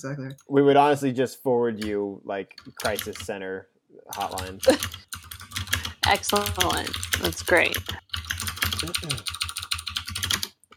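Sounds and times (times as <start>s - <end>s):
speech: 0.0s - 5.2s, 6.1s - 8.1s, 8.8s - 9.4s
rapid forceful typing on a computer keyboard: 1.8s - 3.4s, 4.1s - 10.6s
faint voice murmuring: 8.8s - 9.2s.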